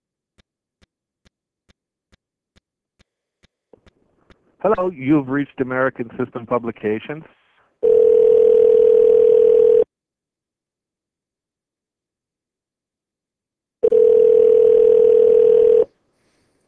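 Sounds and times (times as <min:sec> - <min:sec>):
speech: 0:04.6 - 0:07.4
loud steady telephone dial tone after lines dropped by static charge: 0:07.8 - 0:09.9, 0:13.8 - 0:15.9.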